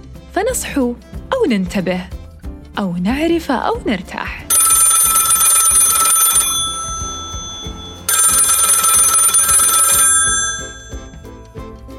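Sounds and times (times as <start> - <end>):
speech: 0.4 - 2.2, 2.8 - 4.4
old-style telephone bell ringing: 4.5 - 11.4.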